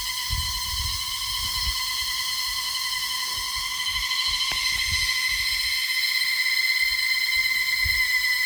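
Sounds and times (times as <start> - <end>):
jungle ambience: 0.2 - 8.3.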